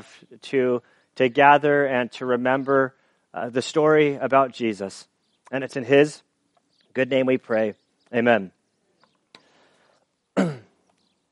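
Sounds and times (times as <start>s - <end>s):
speech: 0.4s - 6.3s, 7.0s - 8.6s
preacher clearing throat during a sermon: 10.4s - 10.8s.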